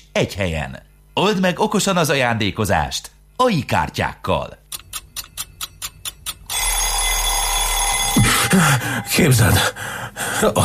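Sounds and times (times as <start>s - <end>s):
speech: 0.2s - 4.6s, 8.6s - 10.6s
alarm clock ringing: 4.8s - 10.6s.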